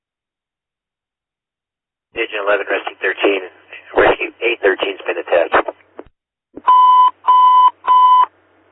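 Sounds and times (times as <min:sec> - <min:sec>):
speech: 0:02.2 - 0:05.8
alarm system beeps: 0:06.6 - 0:08.3.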